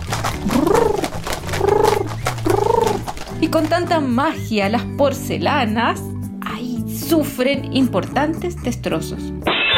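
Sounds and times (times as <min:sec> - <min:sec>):
doves cooing: 0:00.0 - 0:03.9
doves fluttering: 0:00.0 - 0:04.4
speech: 0:03.4 - 0:06.1, 0:07.1 - 0:09.6.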